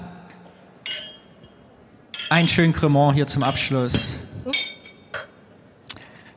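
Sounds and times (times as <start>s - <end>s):
glasses clinking in a toast: 0.8s - 5.3s
speech: 2.3s - 4.2s.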